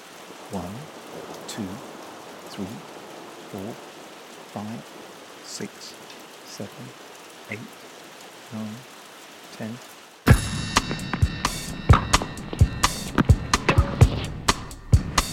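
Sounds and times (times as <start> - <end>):
steady rain hissing: 0.0 - 15.3
speech: 0.5 - 1.0, 1.6 - 1.9, 2.5 - 2.9, 3.5 - 3.9, 4.5 - 7.9, 8.5 - 8.9, 9.6 - 9.9
soft low thud: 10.3 - 14.4.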